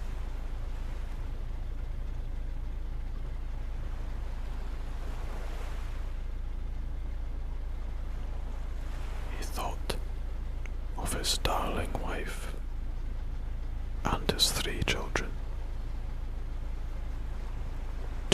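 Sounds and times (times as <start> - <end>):
water lapping against a boat hull: 0.0 - 11.0, 14.8 - 18.3
faint rumble of wind: 0.0 - 18.3.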